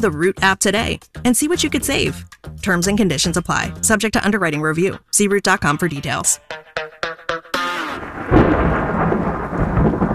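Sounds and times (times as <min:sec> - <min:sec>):
speech: 0:00.0 - 0:06.8
short tonal notes: 0:06.4 - 0:08.4
deep rolling thunder in a thunderstorm: 0:08.0 - 0:10.1
heavy rain hissing in a thunderstorm: 0:08.0 - 0:10.1.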